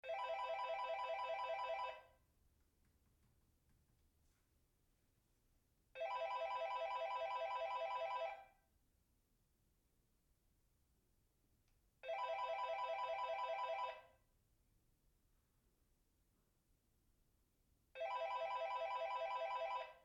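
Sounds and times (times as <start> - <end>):
phone ringing: 0.0 - 2.2, 6.0 - 8.5, 12.0 - 14.1, 18.0 - 20.0.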